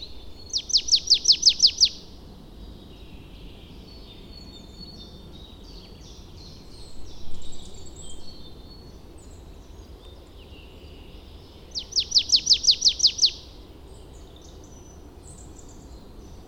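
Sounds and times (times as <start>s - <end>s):
marsh tit Poecile palustris chipping calls: 0.0s - 2.1s, 11.8s - 13.5s.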